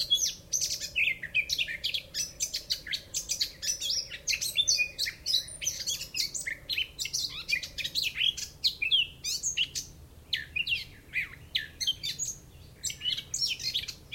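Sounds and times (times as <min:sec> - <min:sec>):
Eurasian blackcap Sylvia atricapilla singing: 0:00.0 - 0:14.1.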